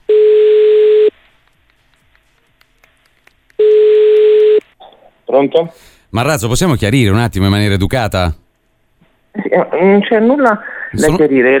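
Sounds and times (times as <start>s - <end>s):
telephone busy tone after a call is hung up: 0.1s - 1.1s, 3.6s - 4.6s
speech: 5.4s - 8.4s, 9.5s - 11.5s.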